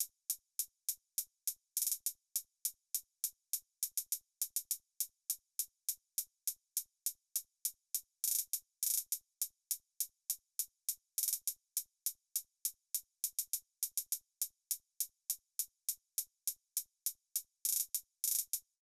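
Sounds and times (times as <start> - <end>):
closed hi-hat drum loop beat: 0.0 - 18.8.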